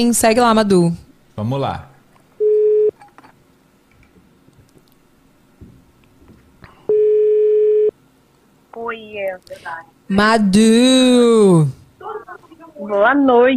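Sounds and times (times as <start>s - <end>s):
speech: 0.0s - 1.9s, 8.8s - 13.5s
ringing tones of an outgoing telephone call: 2.4s - 2.9s, 6.9s - 7.9s.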